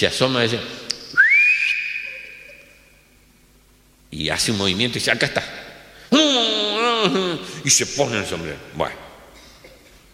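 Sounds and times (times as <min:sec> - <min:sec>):
speech: 0:00.0 - 0:00.8, 0:04.1 - 0:06.4, 0:07.0 - 0:09.1
short whistle sliding upward in pitch: 0:01.1 - 0:02.9.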